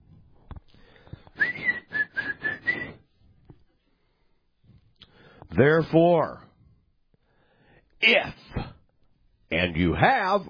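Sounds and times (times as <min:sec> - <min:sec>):
person whistling a short bright tune: 0:01.4 - 0:03.0
speech: 0:05.6 - 0:06.4, 0:09.5 - 0:10.4.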